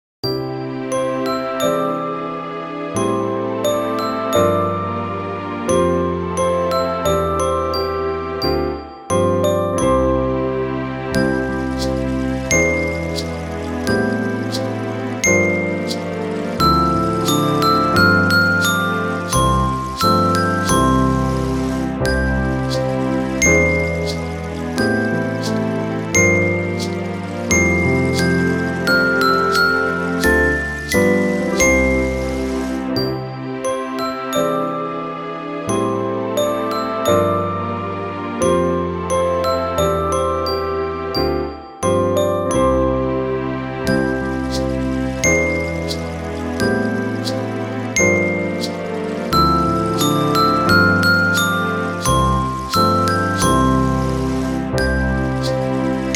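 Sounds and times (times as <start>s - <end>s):
chime bars: 0.2s - 56.1s
musical accompaniment: 0.2s - 56.1s.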